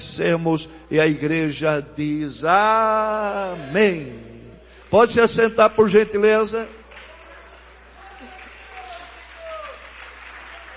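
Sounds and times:
speech: 0:00.0 - 0:04.3, 0:04.9 - 0:06.8
audience applauding: 0:06.8 - 0:10.7.

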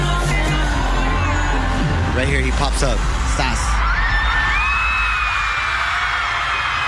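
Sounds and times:
huge concert crowd cheering in Houston Texas: 0:00.6 - 0:06.8
speech: 0:02.2 - 0:03.7
shrill screams and whoops from concert crowd: 0:03.7 - 0:06.8.

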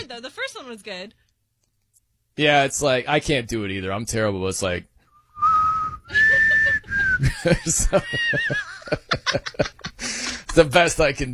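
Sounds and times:
speech: 0:00.0 - 0:01.2, 0:02.4 - 0:04.9, 0:07.2 - 0:11.3
off-key whistling imitating a song melody: 0:05.0 - 0:07.3
snickering laughter: 0:06.1 - 0:10.5.

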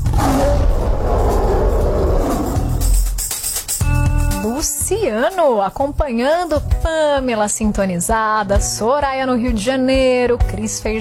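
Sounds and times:
lion roaring: 0:00.0 - 0:03.3
speech: 0:05.0 - 0:10.9.

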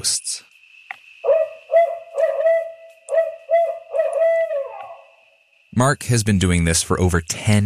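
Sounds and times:
speech: 0:00.0 - 0:00.5, 0:05.8 - 0:07.6
recorded barred owl calls playing through speakers beside a logging road: 0:01.2 - 0:05.1.

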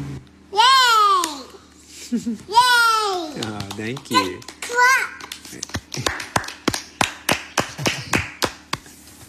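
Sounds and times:
two-year-old girl squealing: 0:00.5 - 0:01.5
speech: 0:02.1 - 0:02.7, 0:03.3 - 0:05.0
family clapping hands for a toddler: 0:03.3 - 0:08.9.

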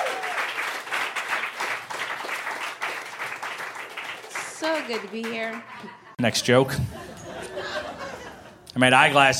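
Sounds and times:
audience applauding with many hands clapping: 0:00.0 - 0:06.1
speech: 0:04.6 - 0:08.0, 0:08.8 - 0:09.3
laughter: 0:05.4 - 0:08.7.

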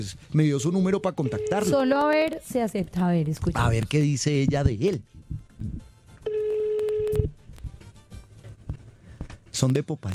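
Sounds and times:
speech: 0:00.0 - 0:05.2, 0:09.6 - 0:10.1
ringback tone of an unanswered phone call: 0:01.0 - 0:01.8, 0:06.2 - 0:07.4.

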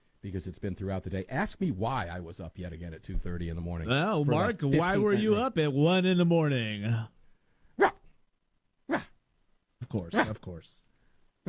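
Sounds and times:
speech: 0:00.2 - 0:07.2, 0:10.0 - 0:11.4
human voice imitating little Shih Tzu barks: 0:07.8 - 0:08.1, 0:08.9 - 0:09.2, 0:10.1 - 0:10.4.

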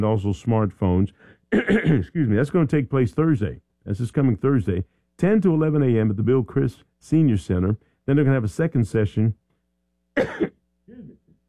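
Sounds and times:
speech: 0:00.0 - 0:09.4, 0:10.2 - 0:10.6
throat clearing: 0:01.5 - 0:02.1, 0:10.2 - 0:11.4
person coughing: 0:01.5 - 0:02.2, 0:10.2 - 0:11.4.

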